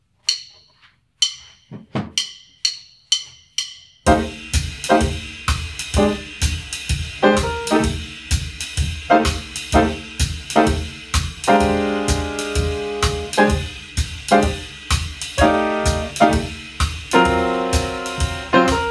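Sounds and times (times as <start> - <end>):
blues in F without bass: 4.1 - 18.8.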